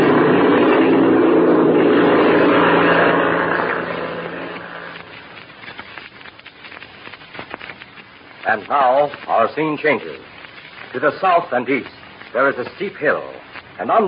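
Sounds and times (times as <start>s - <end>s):
airplane engine roaring while taxiing and taking off: 0.0s - 6.0s
speech: 8.6s - 10.3s, 10.9s - 14.0s.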